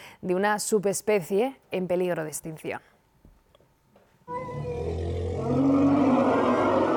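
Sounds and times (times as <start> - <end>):
speech: 0.2 - 2.9
Sumatran elephant herd shrill trumpeting screams: 4.3 - 6.9.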